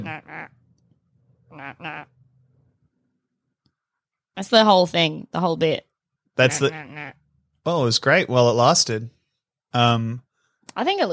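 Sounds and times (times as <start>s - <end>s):
nasal quacks from a toy duck: 0.0s - 0.5s, 1.5s - 2.1s, 6.4s - 7.2s
speech: 1.5s - 2.1s, 4.4s - 11.1s.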